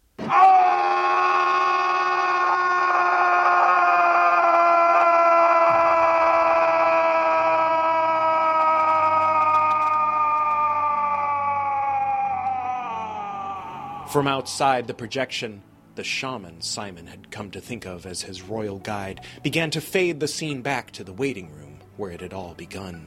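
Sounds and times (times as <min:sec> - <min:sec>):
man screaming in rage and pain: 0:00.2 - 0:15.0
speech: 0:14.2 - 0:23.0.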